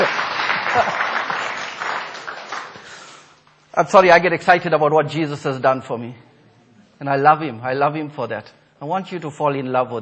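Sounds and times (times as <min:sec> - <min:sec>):
crowd clapping: 0:00.0 - 0:03.2
speech: 0:00.8 - 0:01.0, 0:03.8 - 0:06.3, 0:07.0 - 0:10.0.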